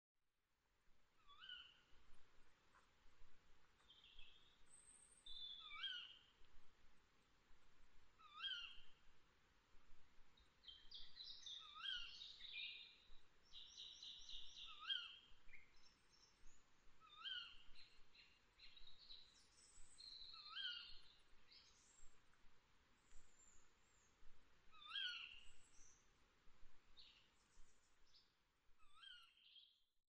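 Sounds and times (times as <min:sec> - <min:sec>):
tawny nightingale: 0:01.2 - 0:01.8, 0:03.8 - 0:06.3, 0:08.2 - 0:09.0, 0:10.6 - 0:22.2, 0:23.0 - 0:26.1, 0:28.8 - 0:29.8.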